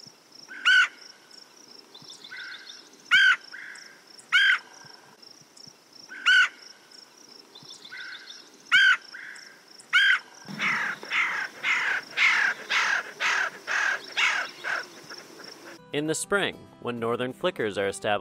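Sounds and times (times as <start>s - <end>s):
faint insect-like hiss: 0.0s - 15.8s
red-headed woodpecker chir and char-char calls: 0.5s - 1.1s, 1.8s - 5.0s, 6.1s - 6.7s, 7.5s - 15.8s
speech: 16.0s - 18.1s.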